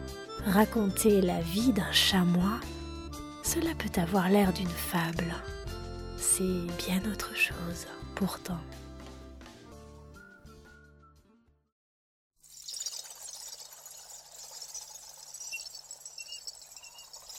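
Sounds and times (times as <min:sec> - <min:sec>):
soft instrumental music: 0:00.0 - 0:11.6
speech: 0:00.4 - 0:02.8, 0:03.5 - 0:05.6, 0:06.3 - 0:08.8.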